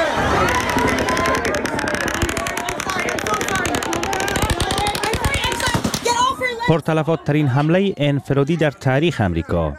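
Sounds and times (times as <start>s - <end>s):
rapid automatic gunfire: 0.2s - 6.6s
speech: 6.7s - 9.7s.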